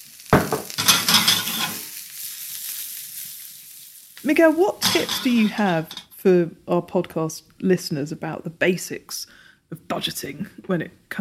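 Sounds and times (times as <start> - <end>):
asparagus sizzling in oil in pan: 0.0 - 6.5
food dropping into a hot pan: 0.4 - 1.9, 4.8 - 6.1
speech: 4.2 - 11.1.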